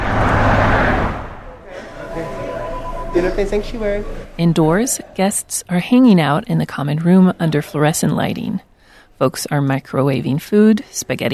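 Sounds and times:
freeway traffic rushing beside a downtown Boise shelter on a snowy December night: 0:00.0 - 0:02.4
speech: 0:03.2 - 0:11.3.

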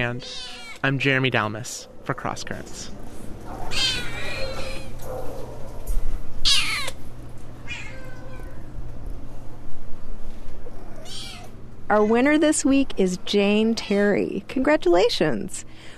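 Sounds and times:
several cats meowing in a cat café in Oakland: 0:00.0 - 0:00.9, 0:03.6 - 0:05.0, 0:06.4 - 0:07.0, 0:07.6 - 0:08.7, 0:10.7 - 0:12.4
speech: 0:00.0 - 0:03.0, 0:11.9 - 0:15.9
steady low hum: 0:00.0 - 0:15.9.

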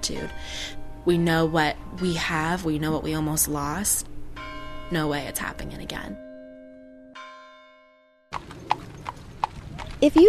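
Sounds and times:
speech: 0:00.0 - 0:04.1, 0:04.9 - 0:06.2, 0:10.0 - 0:10.2
ringing bell tone: 0:00.0 - 0:09.2
horse hooves clip-clopping at walking pace on a hard surface: 0:08.3 - 0:10.2.

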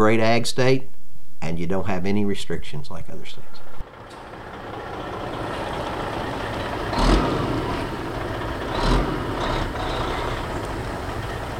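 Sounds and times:
speech: 0:00.0 - 0:03.8
tractor engine rumbling while planting crops in a field in central Ohio: 0:03.2 - 0:11.5.

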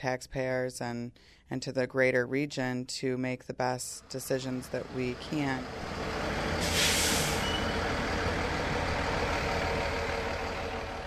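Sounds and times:
speech: 0:00.0 - 0:06.8
bus engines rumbling while pulling into a terminal: 0:04.0 - 0:11.0
bus air-brake hiss: 0:06.6 - 0:07.8
faint reversing beep: 0:07.3 - 0:07.8.

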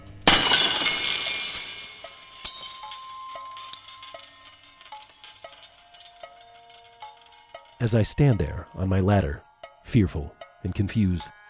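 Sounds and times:
glass light bulbs shattering on a hard floor: 0:00.2 - 0:05.8
tinkling shards of glass light bulbs settling: 0:00.3 - 0:07.8
speech: 0:07.8 - 0:11.4.

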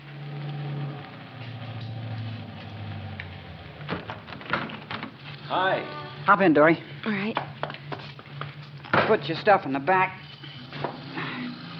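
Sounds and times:
car engine pulling up in front of a hotel and idling: 0:00.0 - 0:11.7
sharp clunks and clicks: 0:03.8 - 0:05.2
speech: 0:05.5 - 0:07.5, 0:09.1 - 0:10.2.

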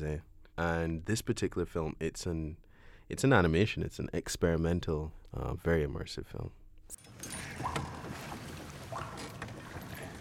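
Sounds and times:
speech: 0:00.0 - 0:06.6, 0:07.2 - 0:08.0
brighter plinks of water droplets: 0:06.9 - 0:10.1
small water splashes and drips: 0:07.0 - 0:10.1.

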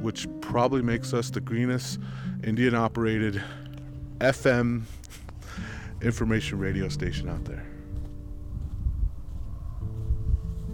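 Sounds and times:
speech: 0:00.0 - 0:03.6, 0:04.2 - 0:07.7
steady wind blowing across an open hilltop buffeting the microphone: 0:04.9 - 0:10.7.

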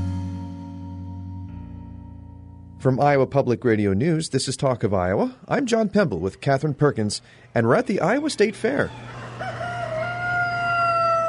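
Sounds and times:
speech: 0:02.8 - 0:09.2
chickens clucking in a barn: 0:07.6 - 0:11.2
other fowl sounding in an echoing barn: 0:08.7 - 0:11.2
rooster crowing in a barn: 0:08.7 - 0:11.2.

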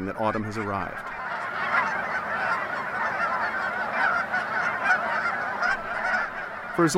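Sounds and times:
speech: 0:00.0 - 0:01.2, 0:06.8 - 0:06.9
large migrating flock of Canada geese honking overhead in autumn in the Chesapeake region: 0:00.0 - 0:06.9.

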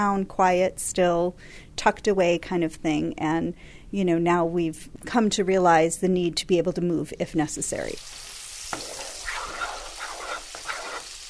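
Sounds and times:
speech: 0:00.0 - 0:08.3
grits sizzling and bubbling in a pot: 0:08.0 - 0:11.2
grits being stirred in a pot, scraping strokes: 0:08.8 - 0:11.2.

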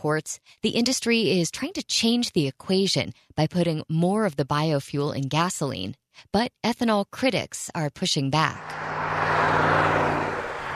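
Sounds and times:
speech: 0:00.0 - 0:08.9
semi trucks pulling trailers full of corn rolling down a highway in north-central Nebraska: 0:08.4 - 0:10.7.

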